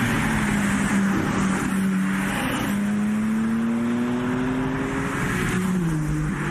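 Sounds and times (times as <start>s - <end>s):
BMW M3 Touring engine revving at the Goodwood Festival of Speed: 0.0s - 6.4s.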